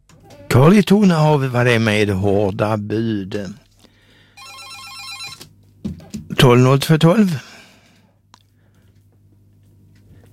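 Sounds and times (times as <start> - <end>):
speech: 0.5 - 3.6, 6.4 - 7.5
telephone ringing with a warbling electronic tone: 4.4 - 5.4.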